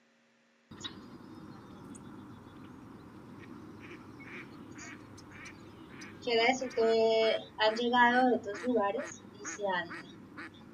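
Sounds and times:
steady noisy hum: 0.7s - 10.7s
domestic duck quacking: 3.3s - 10.7s
speech: 6.3s - 10.1s.

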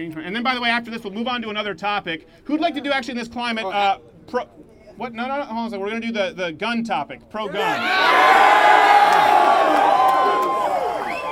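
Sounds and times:
speech: 0.0s - 8.8s
large crowd cheering and whooping: 7.5s - 11.3s.

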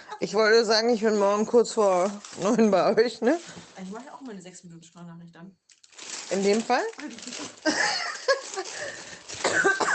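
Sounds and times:
speech: 0.2s - 8.1s
laughter: 7.6s - 9.1s
harsh raspy wheezy coughs: 9.3s - 9.9s.

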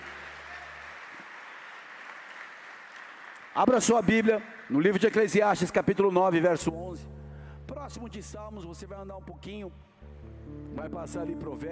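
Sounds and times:
audience applauding during a church service: 0.0s - 5.8s
speech: 3.6s - 7.2s, 7.8s - 11.7s.

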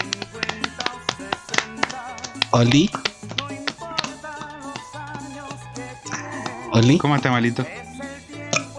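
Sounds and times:
hollow popping taps made by slapping the cheeks as mock applause: 0.0s - 6.7s
speech: 2.5s - 3.0s, 6.8s - 7.8s.

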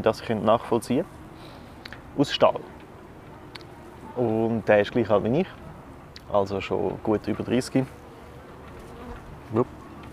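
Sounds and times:
speech: 0.0s - 1.2s, 2.2s - 2.8s, 4.2s - 5.6s, 6.3s - 8.0s, 9.5s - 9.7s
faint noise: 0.0s - 10.1s
wasp buzzing: 7.9s - 9.8s.

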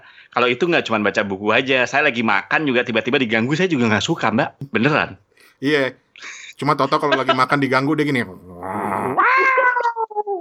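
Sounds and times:
speech: 0.3s - 8.8s
laughter: 5.6s - 8.0s
person imitating an irritated cat meow: 8.2s - 10.3s.

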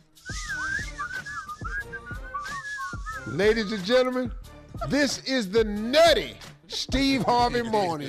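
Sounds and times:
person whistling a wavering, sliding tune: 0.0s - 4.1s
speech: 3.3s - 8.0s.

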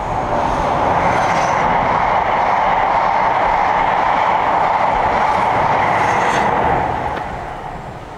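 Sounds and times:
train rumbling along the rails: 0.0s - 8.1s.

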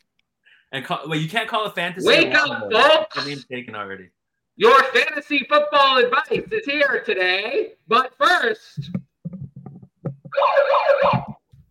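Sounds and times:
speech: 0.7s - 9.0s
low thumps: 8.8s - 10.4s
warbling siren wail: 10.3s - 11.4s.

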